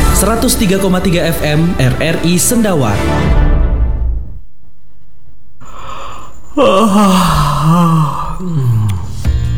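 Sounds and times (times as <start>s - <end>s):
speech: 0.2s - 3.4s, 6.6s - 8.9s
person yawning with a voiced groan: 5.6s - 9.4s.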